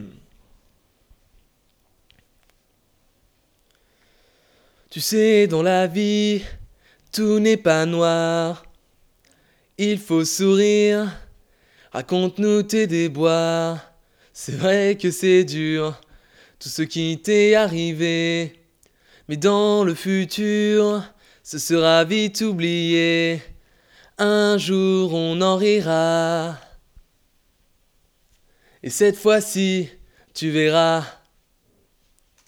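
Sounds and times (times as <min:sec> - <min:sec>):
lead vocal: 0:04.9 - 0:08.8, 0:09.8 - 0:11.4, 0:11.9 - 0:18.6, 0:19.3 - 0:26.8, 0:28.8 - 0:31.4.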